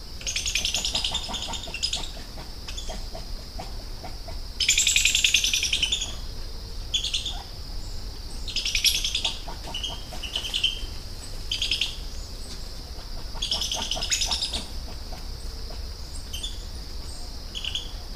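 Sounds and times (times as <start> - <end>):
coati calling: 0.2 - 18.0.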